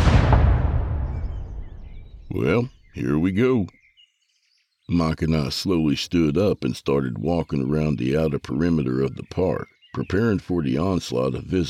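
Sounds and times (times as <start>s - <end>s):
heavy artillery cannon blast at a fair in a park: 0.0s - 2.4s
speech: 2.3s - 3.8s, 4.9s - 11.6s.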